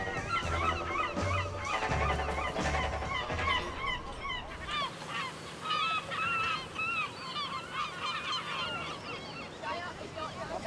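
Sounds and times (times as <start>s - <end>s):
flock of seagulls calling: 0.0s - 10.6s.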